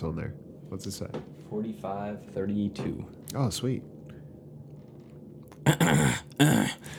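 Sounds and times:
speech: 0.0s - 4.0s, 5.6s - 6.9s
person clearing throat: 5.6s - 6.9s.

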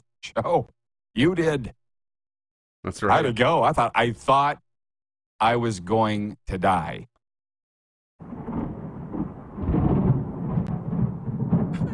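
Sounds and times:
speech: 0.3s - 1.8s, 2.8s - 4.6s, 5.4s - 7.1s
deep rolling thunder: 8.2s - 11.9s.

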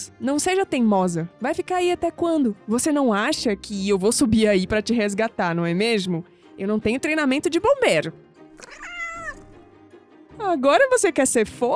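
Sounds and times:
speech: 0.0s - 8.9s, 10.4s - 11.7s
cat meowing: 8.6s - 9.6s.

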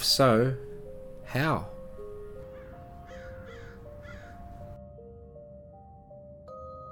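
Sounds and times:
speech: 0.2s - 0.7s, 1.3s - 1.8s
crows cawing: 2.5s - 4.8s.

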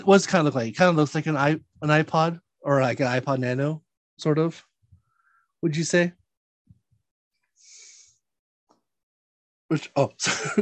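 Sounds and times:
speech: 0.0s - 4.7s, 5.6s - 6.2s, 9.7s - 10.6s
person sniffing: 7.6s - 8.2s.

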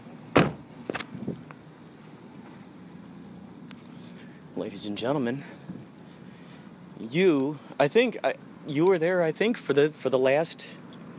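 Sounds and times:
faint vehicle hum of a car pulling out: 0.0s - 11.1s
heavy gate slamming shut: 0.3s - 0.7s
speech: 4.6s - 5.8s, 7.1s - 10.8s.

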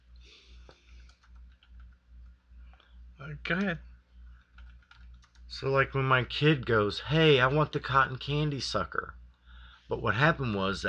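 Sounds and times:
typing on a computer keyboard: 1.0s - 2.8s, 3.5s - 5.5s
speech: 3.2s - 3.9s, 5.5s - 9.2s, 9.9s - 10.8s.

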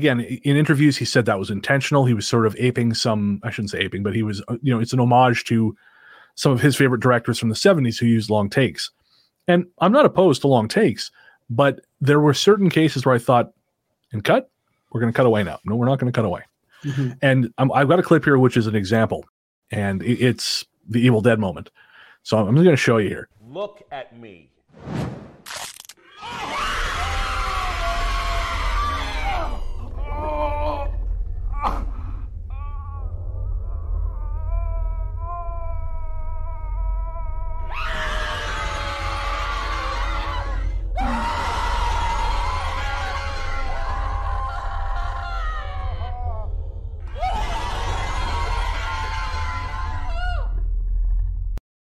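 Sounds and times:
speech: 0.0s - 25.2s
loud person screaming in film clip: 26.0s - 31.0s, 32.5s - 50.5s
steady low rumble: 26.6s - 51.6s
wavering cries: 32.6s - 47.6s
person shouting in film clip: 40.5s - 41.6s.

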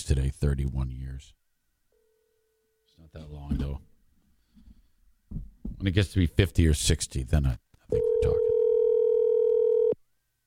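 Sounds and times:
speech: 0.0s - 1.4s, 3.0s - 3.9s, 5.3s - 8.5s
electronic ringing tone on an outgoing phone call: 7.9s - 10.0s.

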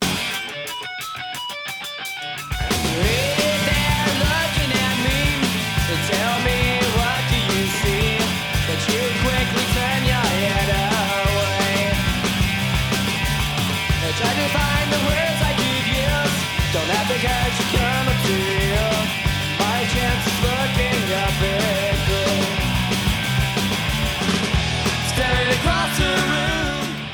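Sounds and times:
loud raw early punk rock song with shouted vocals: 0.0s - 27.1s.

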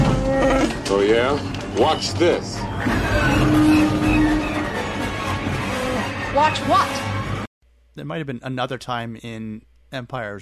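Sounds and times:
speech: 0.9s - 4.1s, 6.4s - 7.1s, 8.0s - 10.4s
spaceship hyperdrive straining and failing to engage: 1.9s - 7.5s.

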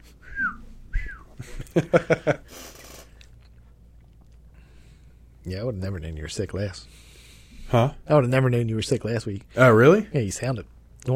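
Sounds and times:
nose whistling while breathing: 0.0s - 1.3s
laughter: 1.4s - 2.5s
speech: 1.8s - 2.8s, 5.5s - 7.1s, 7.7s - 11.1s.

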